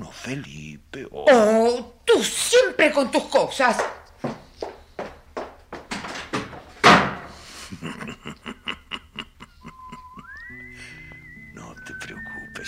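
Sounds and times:
speech: 0.3s - 4.0s
quick thuds and knocks: 5.8s - 7.3s
door slamming shut: 5.9s - 7.3s
laughter: 7.5s - 10.6s
faint whistling tones: 9.6s - 12.6s.

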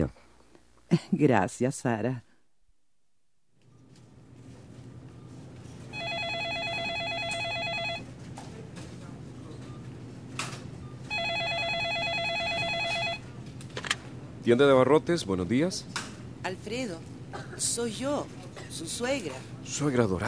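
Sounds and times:
speech: 0.9s - 2.3s, 14.4s - 20.2s
telephone ringback tone down the line to a grocery store: 5.9s - 8.1s, 10.9s - 13.4s.

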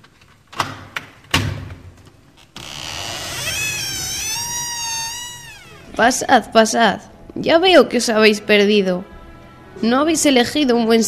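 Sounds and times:
long high wavering creak of an old door opening: 2.4s - 6.3s
speech: 6.0s - 9.1s, 9.8s - 11.0s.

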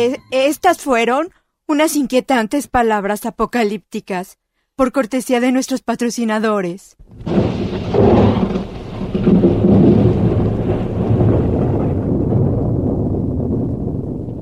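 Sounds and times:
speech: 0.0s - 7.8s, 8.4s - 9.5s
steady heavy rain pouring down: 7.0s - 14.4s
deep rumbling thunder rolling: 7.1s - 14.4s.

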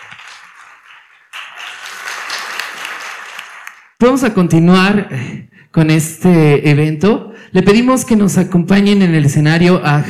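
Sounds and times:
audience at an award event applauding: 0.0s - 4.0s
speech: 4.0s - 10.0s.

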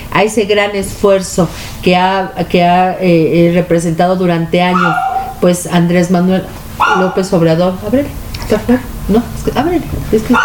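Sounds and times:
low hum: 0.0s - 10.4s
speech: 0.2s - 10.4s
small female dog yapping: 4.7s - 5.4s, 6.8s - 7.2s.

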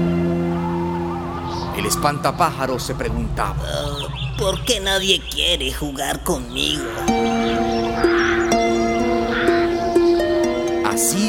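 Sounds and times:
crow cawing: 0.6s - 2.5s, 6.9s - 10.6s
speech: 1.8s - 8.2s, 11.0s - 11.2s.

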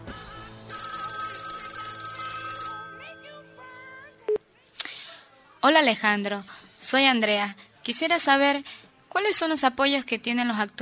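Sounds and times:
telephone ringing with an incoming call on a call-in line: 0.7s - 4.4s
speech: 5.6s - 10.8s.

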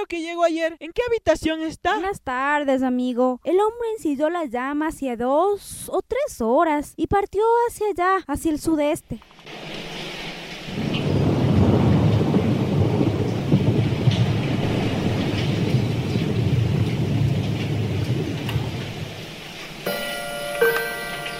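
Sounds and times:
speech: 0.0s - 9.8s
steady heavy rain: 9.2s - 21.3s
deep rolling rumble of thunder: 9.5s - 21.3s
ticking chiming tone: 19.9s - 21.3s.

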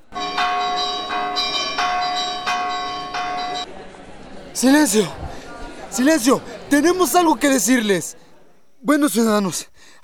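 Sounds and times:
large bell clanging to gather townspeople: 0.1s - 3.7s
speech: 4.6s - 5.4s, 6.0s - 8.2s, 8.8s - 10.0s.

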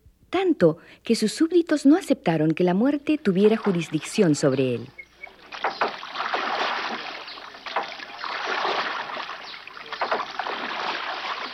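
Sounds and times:
speech: 0.3s - 5.0s
sea water sloshing around a small boat: 3.4s - 11.5s
waves slapping against a boat hull: 5.4s - 11.5s.

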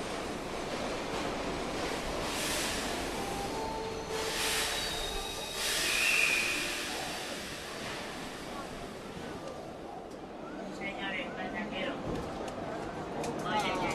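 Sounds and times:
subway train pulling in to a station rumbling: 0.0s - 13.9s
bursts of hissing from a subway train: 4.2s - 9.1s.

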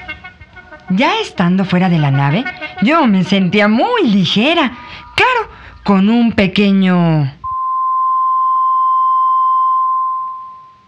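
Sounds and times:
speech: 0.9s - 7.4s
steady high-pitched ringing tone: 7.4s - 10.8s.

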